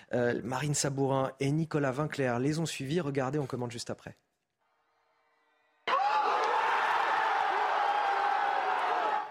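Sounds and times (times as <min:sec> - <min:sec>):
speech: 0:00.1 - 0:04.3
football fans cheering and shouting in a bar: 0:05.8 - 0:09.2.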